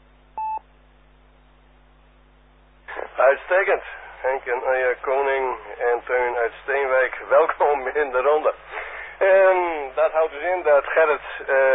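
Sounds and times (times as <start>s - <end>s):
faint low hum: 0.0s - 11.7s
electronic telephone tone: 0.4s - 0.6s
speech: 3.2s - 11.7s.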